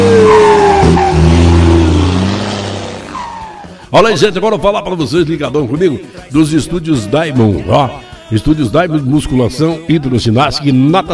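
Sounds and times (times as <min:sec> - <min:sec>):
truck engine revving and pulling away while shifting gears: 0:00.0 - 0:03.9
speech: 0:03.9 - 0:11.1.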